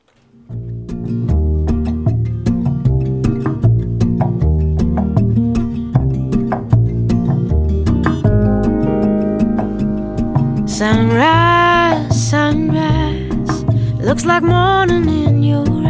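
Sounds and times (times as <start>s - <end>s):
warm sustained bass and chords in a pop song intro: 0.5s - 15.8s
clicking percussion beat in a pop song intro: 1.6s - 14.4s
speech: 14.1s - 15.8s.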